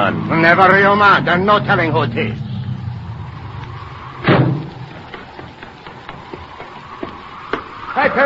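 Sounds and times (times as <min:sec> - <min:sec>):
car engine humming: 0:00.0 - 0:08.0
speech: 0:00.1 - 0:02.5, 0:08.0 - 0:08.2
car door slamming: 0:04.2 - 0:04.8.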